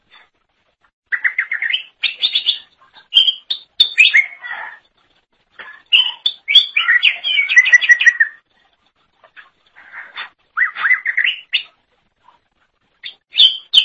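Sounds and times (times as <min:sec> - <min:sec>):
leafbird singing trills, whistled and chattering notes: 0:01.1 - 0:05.0, 0:05.6 - 0:08.5, 0:09.3 - 0:11.8, 0:13.0 - 0:13.8.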